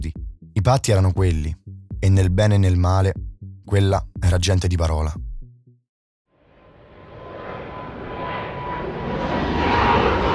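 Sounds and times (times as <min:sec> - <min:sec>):
speech: 0:00.7 - 0:05.2
Airbus 321 jet airliner engines roaring: 0:06.6 - 0:10.3.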